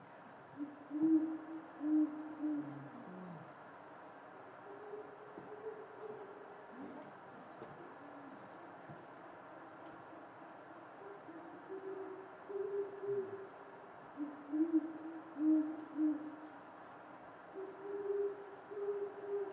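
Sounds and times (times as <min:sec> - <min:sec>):
owls hooting in winter from different trees: 0:00.6 - 0:03.6, 0:04.6 - 0:07.1, 0:10.9 - 0:13.5, 0:14.1 - 0:16.6, 0:17.5 - 0:19.5.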